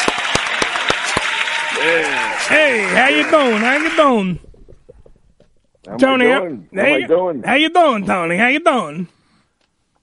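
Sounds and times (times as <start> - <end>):
applause sound effect from a small crowd: 0.0 - 4.4
speech: 1.8 - 4.5, 5.8 - 9.2.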